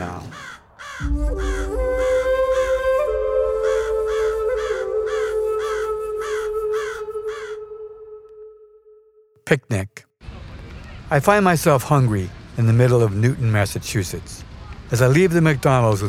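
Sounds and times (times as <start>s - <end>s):
raven cawing: 0.0s - 8.2s
sustained low droning tone: 1.0s - 9.0s
speech: 9.5s - 10.1s, 11.1s - 16.0s.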